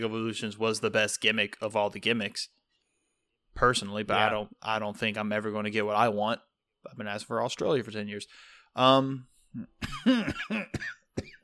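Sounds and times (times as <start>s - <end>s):
speech: 0.0s - 2.6s, 3.6s - 11.3s
harsh loud coughs: 9.7s - 11.4s.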